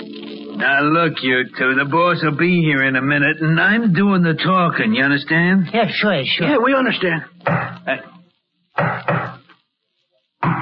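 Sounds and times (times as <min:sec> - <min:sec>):
speech: 0:00.6 - 0:08.2
firm knocking on a wooden door: 0:08.8 - 0:09.4.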